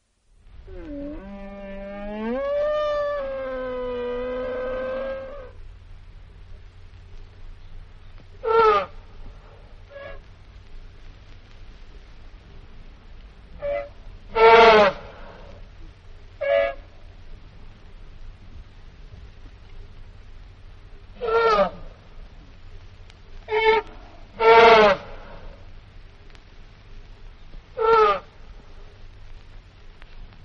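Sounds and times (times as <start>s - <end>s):
elephant trumpeting: 0.8s - 5.6s, 8.4s - 9.0s, 13.6s - 15.6s, 21.2s - 22.0s, 23.5s - 25.6s.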